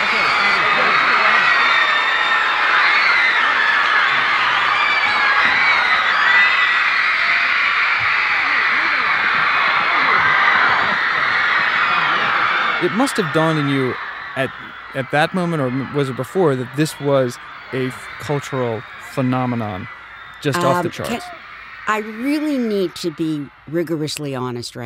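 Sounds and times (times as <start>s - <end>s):
laughter: 0.0s - 1.7s, 8.4s - 23.9s
huge crowd screaming at a concert: 0.0s - 24.6s
speech: 12.9s - 24.8s.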